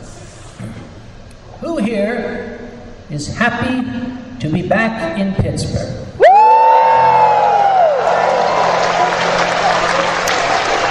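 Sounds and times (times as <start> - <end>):
speech: 1.8 - 2.5, 3.1 - 6.1
falling whoop: 6.2 - 9.4
large audience in Pittsburgh cheering: 6.2 - 10.8.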